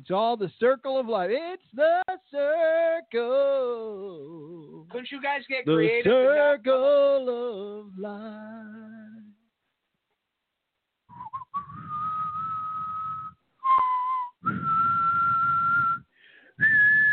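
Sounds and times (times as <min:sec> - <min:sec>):
speech: 0:00.0 - 0:09.2
person whistling long high notes: 0:11.1 - 0:17.1.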